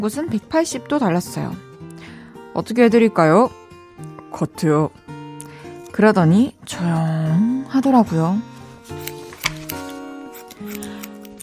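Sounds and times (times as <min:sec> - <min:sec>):
speech: 0:00.0 - 0:01.7, 0:02.6 - 0:03.6, 0:04.3 - 0:05.0, 0:06.0 - 0:08.5
scissors snipping a man's hair at a hair salon: 0:08.9 - 0:11.4.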